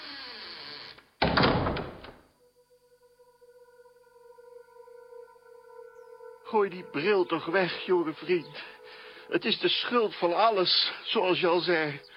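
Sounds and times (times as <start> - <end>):
house door shutting with a loud rushing thud: 1.2 - 2.2
faint steady ringing tone: 2.3 - 12.1
speech: 6.5 - 12.1.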